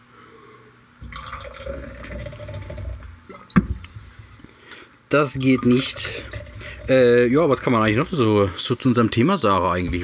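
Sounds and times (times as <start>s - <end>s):
water pouring into a glass: 1.0s - 3.6s, 5.4s - 7.6s
speech: 5.1s - 10.0s.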